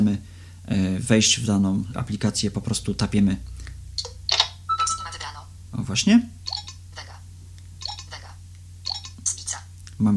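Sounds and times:
low steady hum: 0.0 - 10.1
speech: 0.1 - 4.2, 5.7 - 6.4, 10.0 - 10.1
smartphone ringtone preview: 4.7 - 5.4.

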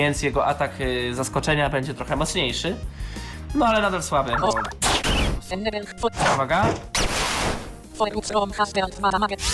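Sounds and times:
speech: 0.0 - 7.0, 8.0 - 9.5
video game super-effective hit sound effect in a battle: 4.4 - 5.3.

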